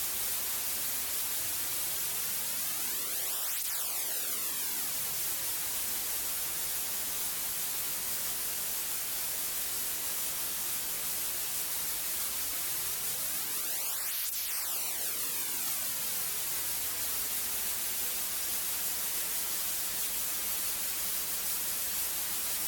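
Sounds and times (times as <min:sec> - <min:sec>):
flanged white noise: 0:00.2 - 0:22.6.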